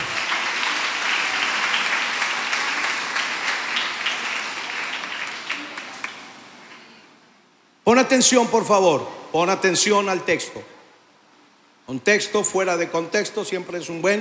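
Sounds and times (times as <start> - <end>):
audience applause during a sermon: 0.0 - 6.5
speech: 7.9 - 10.7, 11.9 - 14.1.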